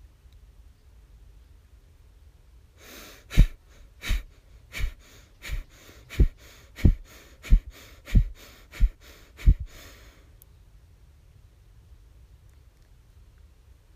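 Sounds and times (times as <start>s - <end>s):
rapid forceful rhythmic breathing through the nose: 2.8s - 10.3s.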